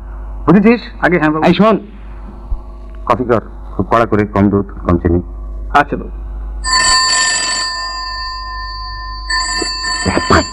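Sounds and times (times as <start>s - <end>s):
speech: 0.5s - 2.0s, 3.1s - 6.2s, 10.0s - 10.5s
telephone ringing in a home with a metallic bell tone: 6.6s - 10.5s.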